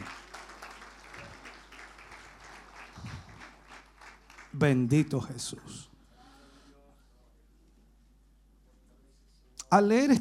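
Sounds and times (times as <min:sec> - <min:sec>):
audience applauding: 0:00.0 - 0:05.1
speech: 0:04.6 - 0:05.9, 0:09.7 - 0:10.1.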